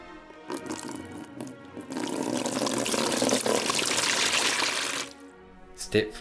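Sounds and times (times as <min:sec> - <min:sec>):
rubbing alcohol pouring through a funnel into a water cooler: 0:00.3 - 0:05.2
speech: 0:05.9 - 0:06.1.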